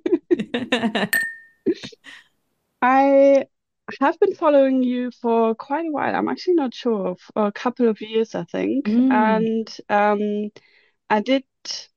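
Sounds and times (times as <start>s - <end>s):
speech: 0.6s - 2.2s, 2.8s - 11.9s
glasses clinking in a toast: 1.1s - 1.7s.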